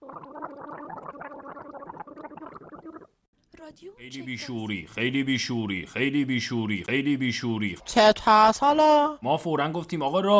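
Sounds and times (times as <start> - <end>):
gargling: 0.0 - 3.2
speech: 3.6 - 10.3.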